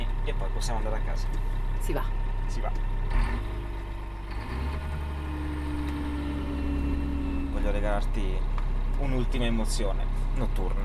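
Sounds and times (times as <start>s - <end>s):
heavy diesel snowcat engine rumbling while driving on ski slopes at night: 0.0s - 10.8s
speech: 0.3s - 3.6s, 7.6s - 10.8s.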